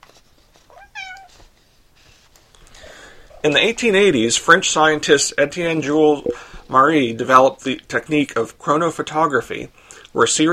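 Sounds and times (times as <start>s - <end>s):
house cat meowing: 0.7s - 1.4s
speech: 3.4s - 10.5s.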